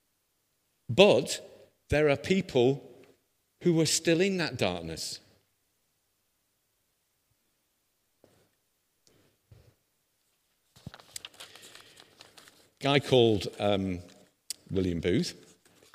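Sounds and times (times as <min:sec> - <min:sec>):
speech: 0:00.9 - 0:02.9, 0:03.6 - 0:05.2, 0:12.8 - 0:14.1, 0:14.7 - 0:15.4
paper rustling and crinkling while someone searches for a piece of paper: 0:10.2 - 0:14.4, 0:15.4 - 0:15.9.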